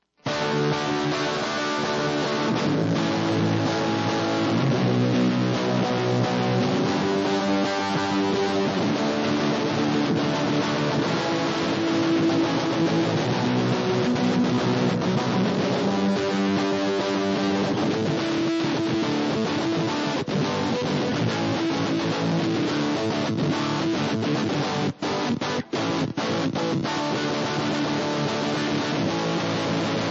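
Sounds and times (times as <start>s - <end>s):
noise guitar: 0.0s - 30.0s.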